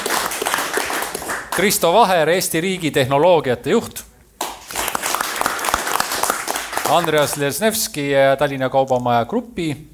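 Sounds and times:
crowd applauding: 0.0s - 1.7s, 4.4s - 7.4s
speech: 1.6s - 4.1s, 6.9s - 9.9s.

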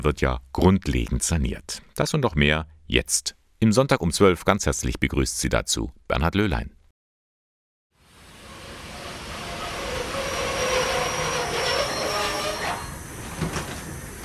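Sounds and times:
speech: 0.0s - 6.8s
train rumbling through the main station: 8.1s - 14.2s
faint metallic squeal of train wheels: 8.4s - 13.3s.

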